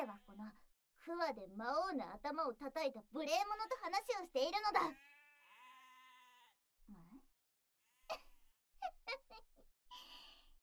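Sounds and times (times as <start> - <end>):
several sheep bleating: 0.0 - 0.4, 4.8 - 6.6
speech: 0.4 - 5.2.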